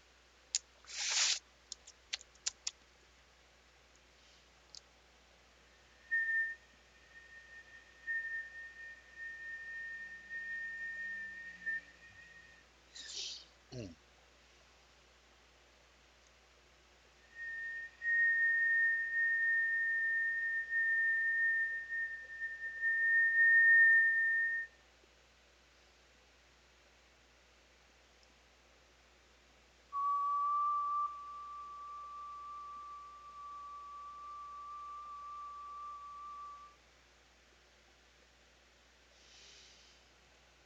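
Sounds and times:
sharp clicks: 0.5 - 2.8
people whistling high note with lips in a Native American shamanistic ritual: 6.0 - 13.4, 17.3 - 24.8, 30.0 - 36.8.

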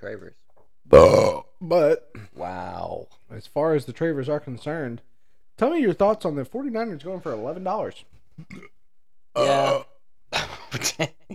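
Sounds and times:
speech: 0.0 - 2.6, 3.4 - 8.7, 9.4 - 9.8
loud throaty burp: 0.9 - 1.4, 8.5 - 8.7, 9.4 - 9.9
short breathy vocal sounds: 0.9 - 1.4.

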